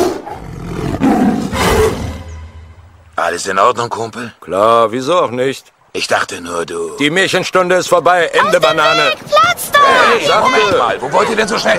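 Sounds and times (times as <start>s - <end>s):
hungry tiger roaring: 0.0s - 2.4s
speech: 3.3s - 11.7s.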